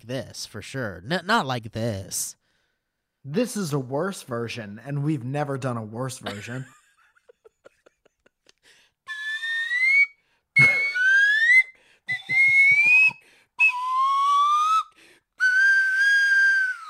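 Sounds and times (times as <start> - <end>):
speech: 0.0 - 2.4, 3.2 - 6.8
laughter: 6.3 - 8.6, 12.1 - 13.2
slide whistle playing long sliding notes: 9.1 - 16.8.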